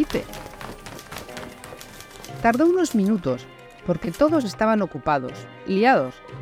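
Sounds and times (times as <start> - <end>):
speech: 0.0 - 0.4, 2.3 - 6.4
footsteps of a boy running: 0.0 - 4.8.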